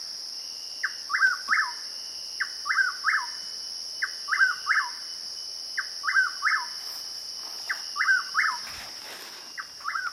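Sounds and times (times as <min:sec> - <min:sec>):
Chuck-will's-widow calling: 0:00.8 - 0:01.8, 0:02.4 - 0:05.1, 0:05.8 - 0:06.9, 0:07.6 - 0:08.8, 0:09.5 - 0:10.1.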